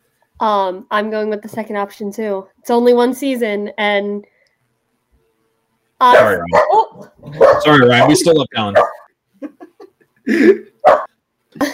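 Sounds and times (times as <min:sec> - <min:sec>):
speech: 0:00.4 - 0:04.3, 0:06.0 - 0:09.5, 0:10.3 - 0:11.0
dog barking: 0:06.1 - 0:08.0, 0:08.7 - 0:09.1, 0:10.8 - 0:11.1.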